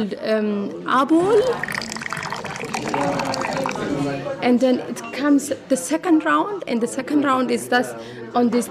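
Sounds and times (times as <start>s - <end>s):
speech: 0.0s - 1.9s, 2.7s - 8.6s
faint voices: 1.2s - 4.4s
brewed coffee pouring into a small cup: 1.4s - 4.2s.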